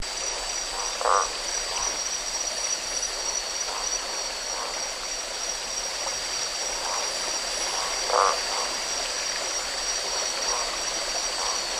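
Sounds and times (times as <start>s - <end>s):
frog croaks: 0.0s - 11.7s
high-pitched hiss: 0.0s - 11.7s.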